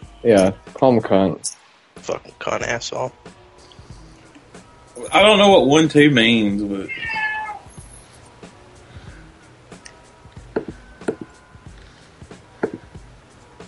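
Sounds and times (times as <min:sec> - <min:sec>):
speech: 0:00.2 - 0:03.4, 0:05.0 - 0:07.2
cat meowing: 0:06.8 - 0:07.8.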